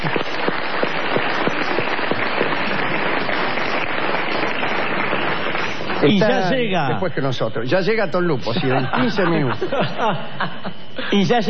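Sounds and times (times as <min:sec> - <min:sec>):
crowd applauding: 0:00.0 - 0:06.7
speech: 0:06.0 - 0:11.4
laughter: 0:08.5 - 0:11.3.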